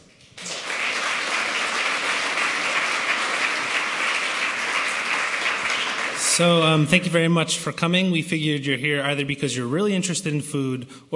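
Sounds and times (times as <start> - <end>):
applause from a sizable audience: 0.4 - 6.8
speech: 6.4 - 11.1.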